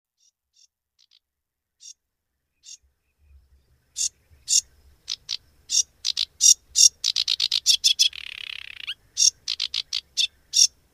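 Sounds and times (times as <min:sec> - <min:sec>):
Sedge warbler song with scratchy notes and harsh chattering: 0:02.6 - 0:02.9, 0:03.8 - 0:10.8.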